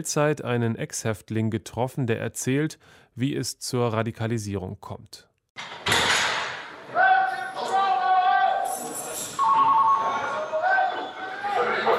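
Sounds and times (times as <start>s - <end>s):
speech: 0.0s - 5.8s
heavy prison door slamming shut: 5.6s - 6.7s
indistinct voices in a reverberant space: 6.8s - 11.9s.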